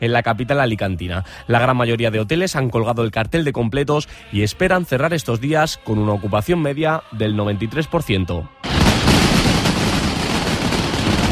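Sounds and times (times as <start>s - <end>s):
speech: 0.0s - 9.0s
mascletà firecracker barrage explosions: 8.6s - 11.3s.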